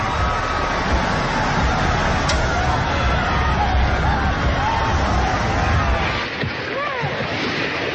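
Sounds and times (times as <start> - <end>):
faint shouts and voices: 0.0 - 7.2
tsunami floodwater surging through streets near Nuku'alofa Tonga: 0.0 - 7.9.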